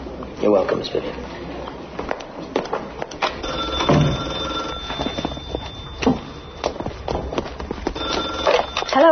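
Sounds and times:
speech: 0:00.4 - 0:01.4
telephone ringing: 0:03.4 - 0:07.0, 0:07.9 - 0:09.0
footstep-like thumps: 0:03.9 - 0:08.4.

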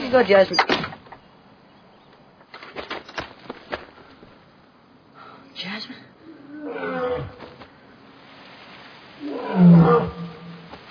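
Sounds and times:
speech: 0:00.1 - 0:00.9
lion roaring: 0:06.4 - 0:07.4, 0:09.2 - 0:10.7.

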